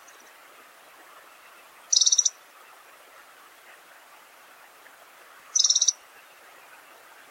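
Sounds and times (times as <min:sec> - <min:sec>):
quiet hiss: 0:00.0 - 0:07.2
pink-rumped rosefinch rattling call notes: 0:01.9 - 0:02.3, 0:05.5 - 0:06.0.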